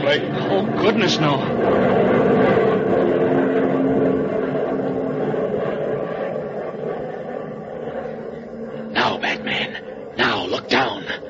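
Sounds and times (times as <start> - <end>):
airplane engine droning overhead: 0.0 - 11.2
speech: 0.1 - 3.1.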